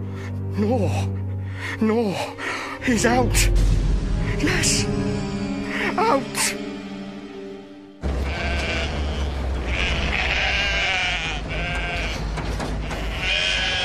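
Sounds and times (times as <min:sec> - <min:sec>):
speech: 0:00.3 - 0:03.8, 0:04.4 - 0:06.6
steady low rumble: 0:02.5 - 0:10.0
sheep bleating: 0:08.1 - 0:13.8.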